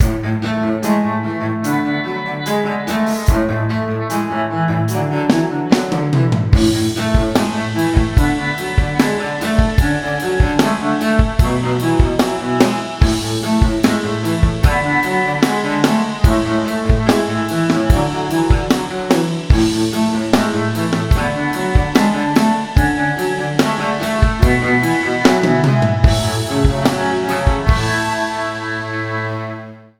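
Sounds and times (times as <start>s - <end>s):
cello: 0.0s - 29.9s.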